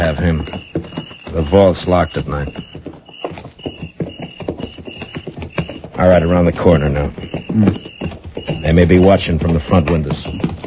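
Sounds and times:
horses' hooves clip-clopping: 0.0s - 10.6s
speech: 0.1s - 2.7s, 6.0s - 7.9s, 8.6s - 10.5s.

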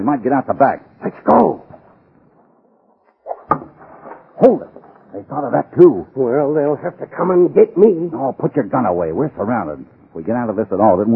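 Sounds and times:
speech: 0.0s - 1.7s, 4.4s - 11.1s
arrow striking wood: 3.3s - 4.3s.

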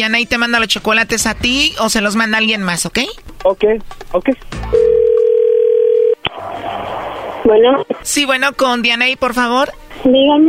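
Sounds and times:
speech: 0.0s - 5.0s, 7.4s - 10.4s
telephone dial tone while calling someone: 4.8s - 6.2s.

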